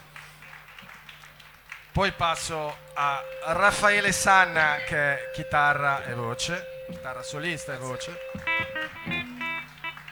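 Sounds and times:
audience applauding a drummer at a concert: 0.0s - 4.9s, 7.0s - 10.1s
speech: 2.0s - 9.0s.

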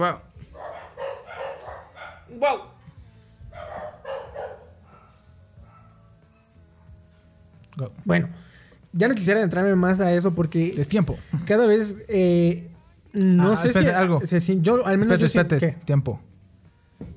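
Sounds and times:
speech: 0.0s - 0.3s, 2.3s - 2.7s, 7.8s - 16.3s
dogs barking with sharp repeated yaps: 0.0s - 6.9s
dog yelping: 0.5s - 2.7s, 3.5s - 6.6s.

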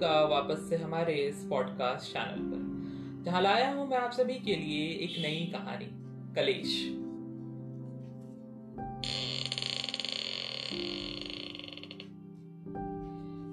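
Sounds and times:
speech: 0.0s - 7.0s
old door of a house creaking open: 9.0s - 12.1s.

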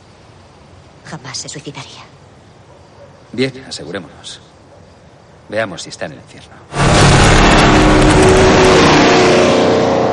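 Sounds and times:
speech: 1.1s - 2.2s, 3.3s - 4.5s, 5.5s - 6.8s
bus speeding past along a street: 6.7s - 10.1s.

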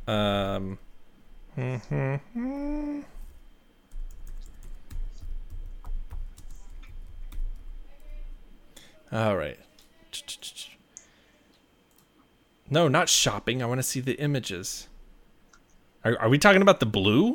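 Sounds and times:
speech: 0.1s - 0.9s, 1.6s - 3.0s, 9.1s - 9.7s, 12.7s - 14.9s, 16.0s - 17.3s
typing on a computer keyboard: 3.9s - 8.1s.

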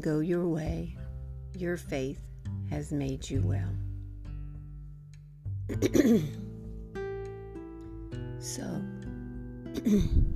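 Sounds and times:
speech: 0.0s - 3.9s, 5.7s - 6.4s, 8.4s - 9.0s, 9.7s - 10.3s
rough throat clearing: 5.7s - 6.4s, 9.8s - 10.2s.

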